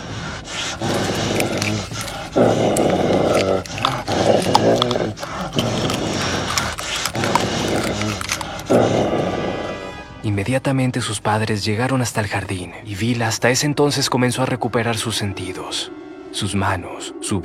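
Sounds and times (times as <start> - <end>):
dog growling and snarling while biting wire mesh in a garden: 0.0 - 10.0
dog's teeth clattering on wire mesh lying on the ground: 0.8 - 8.7
speech: 10.4 - 17.4.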